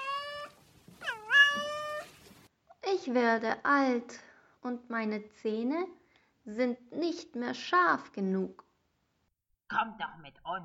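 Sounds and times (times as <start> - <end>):
old cat meowing by a roadside: 0.0 - 2.4
speech: 3.1 - 8.6, 9.7 - 10.6.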